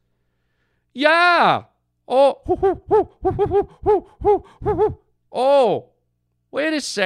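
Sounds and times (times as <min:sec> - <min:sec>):
speech: 0:01.0 - 0:05.9, 0:06.5 - 0:07.0
owl hooting: 0:02.4 - 0:05.0.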